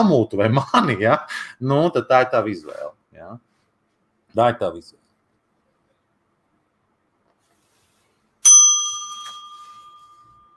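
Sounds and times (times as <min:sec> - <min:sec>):
speech: 0:00.0 - 0:03.5, 0:04.4 - 0:05.0
small bell ringing: 0:08.4 - 0:10.5.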